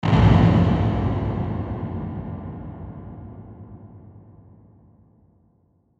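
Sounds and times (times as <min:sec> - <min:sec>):
dark reverberant ringing hit: 0:00.0 - 0:05.2.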